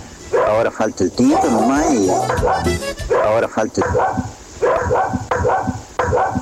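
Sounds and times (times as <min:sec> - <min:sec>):
dog barking: 0:00.3 - 0:06.4
speech: 0:00.5 - 0:04.3.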